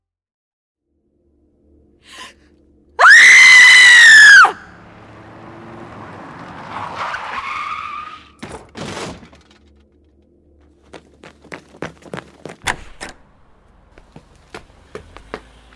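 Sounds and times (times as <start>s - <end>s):
car skidding with loud piercing tire screech: 3.0s - 8.4s.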